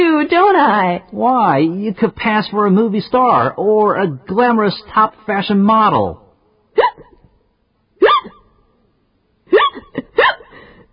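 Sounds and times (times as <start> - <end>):
speech: 0.0 - 6.2
sharp voiced hiccups: 6.8 - 7.2, 8.0 - 8.6, 9.5 - 10.5.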